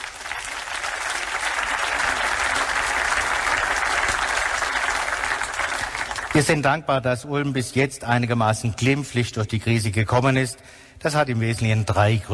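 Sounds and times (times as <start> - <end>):
audience applause at a civic address in Ulm: 0.0 - 6.6
speech: 6.4 - 12.3.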